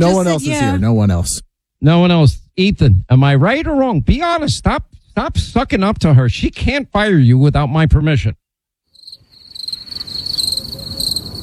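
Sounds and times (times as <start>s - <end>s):
speech: 0.0s - 8.4s
crickets chirping: 8.9s - 11.4s.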